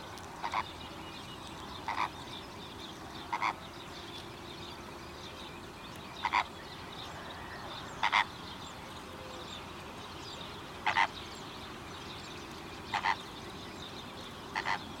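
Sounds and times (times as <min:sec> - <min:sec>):
greater flamingo calling: 0:00.4 - 0:00.7, 0:01.8 - 0:02.2, 0:03.3 - 0:03.6, 0:06.2 - 0:06.6, 0:07.4 - 0:08.4, 0:10.8 - 0:11.2, 0:12.9 - 0:13.3, 0:14.5 - 0:14.8.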